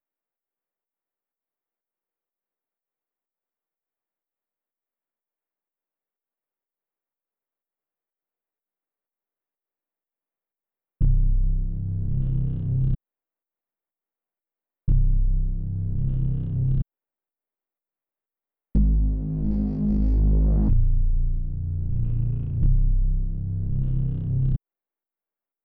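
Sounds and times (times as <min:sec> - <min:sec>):
124 BPM C minor bass: 0:11.0 - 0:13.0, 0:14.9 - 0:16.8, 0:18.8 - 0:24.6.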